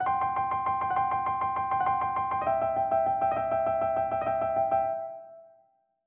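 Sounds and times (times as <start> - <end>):
rock piano: 0.0 - 5.4.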